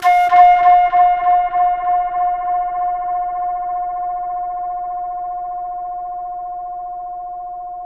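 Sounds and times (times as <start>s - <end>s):
pan flute: 0.0s - 4.0s.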